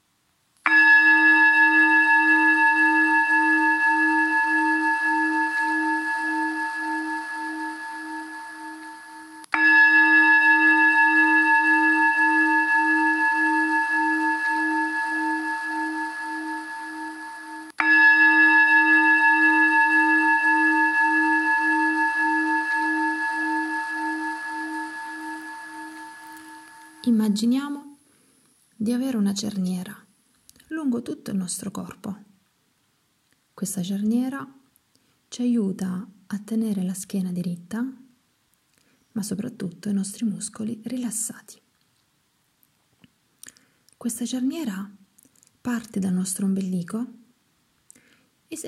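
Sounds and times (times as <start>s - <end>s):
meditation bell ringing: 0.7s - 27.5s
speech: 29.4s - 29.9s, 31.5s - 32.2s, 33.6s - 34.6s, 35.4s - 38.0s, 39.2s - 41.6s, 44.0s - 45.0s, 45.7s - 47.2s.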